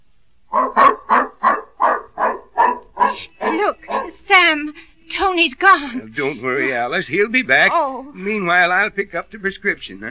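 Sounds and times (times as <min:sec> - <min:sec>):
dog barking sharp yaps while running off after a cat: 0:00.5 - 0:04.2
speech: 0:05.4 - 0:10.0.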